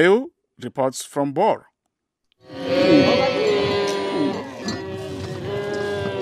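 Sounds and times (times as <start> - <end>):
speech: 0.0 - 1.7
cattle lowing at a cattle camp: 2.4 - 6.2.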